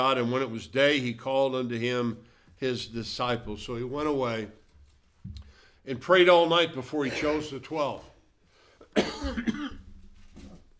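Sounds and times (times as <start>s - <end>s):
speech: 0.0s - 4.6s, 5.2s - 8.1s, 9.0s - 9.8s
raspy cough with throat clearing: 7.0s - 7.6s, 8.8s - 9.9s.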